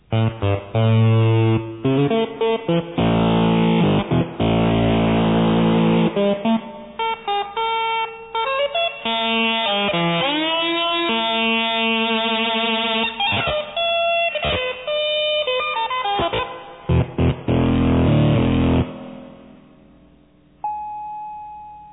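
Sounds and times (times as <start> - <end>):
buzzy analog two-oscillator synthesizer melody with LFO sine-wave vibrato: 0.0 - 20.1
thin beep: 20.6 - 21.9.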